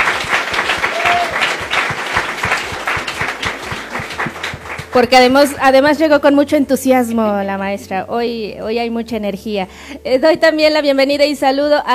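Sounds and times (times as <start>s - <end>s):
sustained crowd applause: 0.0s - 5.1s
speech: 5.0s - 11.9s.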